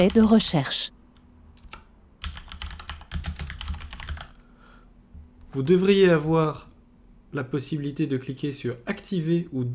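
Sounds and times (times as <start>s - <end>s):
typing on a computer keyboard: 0.0s - 0.5s, 1.1s - 4.5s
speech: 0.0s - 1.0s, 5.5s - 6.7s, 7.3s - 9.7s.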